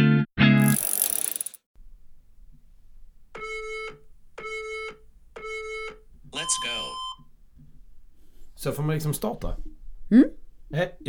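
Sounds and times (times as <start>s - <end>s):
interval workout timer app countdown beeps: 3.4s - 7.2s
speech: 6.5s - 7.0s, 8.6s - 11.0s.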